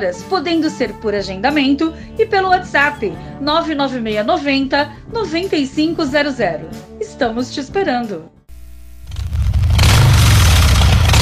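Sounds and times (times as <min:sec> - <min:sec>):
speech: 0:00.0 - 0:08.4
motorcycle engine rumbling and revving: 0:08.9 - 0:11.2.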